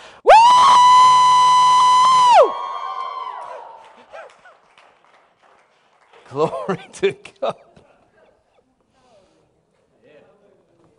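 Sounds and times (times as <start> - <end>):
woman screaming high-pitched: 0.3 - 3.7
speech: 6.4 - 7.7.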